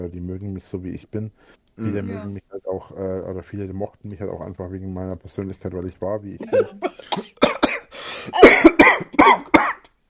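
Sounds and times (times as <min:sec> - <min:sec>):
speech: 0:00.0 - 0:07.5, 0:08.2 - 0:09.1
harsh rapid coughing: 0:06.4 - 0:09.9
raspy inhale: 0:07.9 - 0:08.4.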